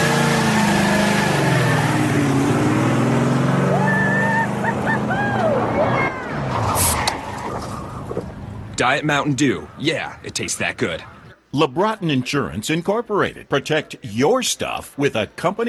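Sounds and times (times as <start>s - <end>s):
race car engine roaring and revving: 0.0s - 8.8s
speech: 8.9s - 15.6s.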